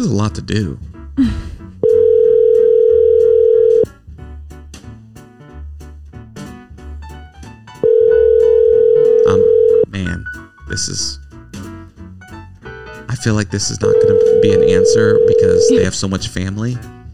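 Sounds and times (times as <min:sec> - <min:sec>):
speech: 0:00.0 - 0:01.5, 0:10.8 - 0:11.2, 0:13.2 - 0:16.9
soft music: 0:00.0 - 0:17.1
outgoing phone call ringing tone: 0:01.8 - 0:03.8, 0:07.8 - 0:09.9, 0:13.8 - 0:15.9.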